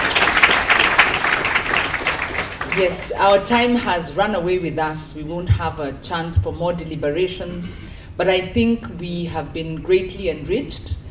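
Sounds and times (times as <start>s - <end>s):
audience applause for a discussion panel: 0.0s - 3.0s
speech: 2.8s - 11.0s.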